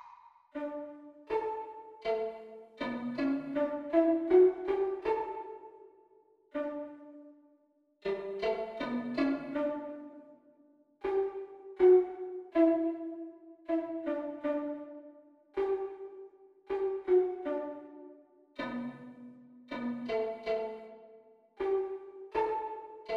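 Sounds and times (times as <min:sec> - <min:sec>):
violin duet practice: 0:00.6 - 0:05.6, 0:08.1 - 0:10.2, 0:11.1 - 0:14.9, 0:16.7 - 0:19.0, 0:19.7 - 0:21.0, 0:21.6 - 0:23.1.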